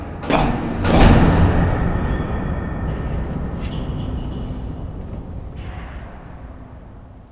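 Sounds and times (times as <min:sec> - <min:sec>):
long rumble: 0:00.0 - 0:07.2
heavy metal jail doors slamming shut: 0:00.2 - 0:02.8.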